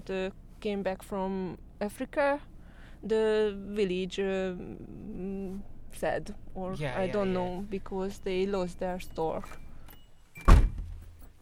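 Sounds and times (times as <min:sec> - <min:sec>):
speech: 0:00.0 - 0:09.6
car door slamming as someone gets into a car: 0:10.4 - 0:11.2.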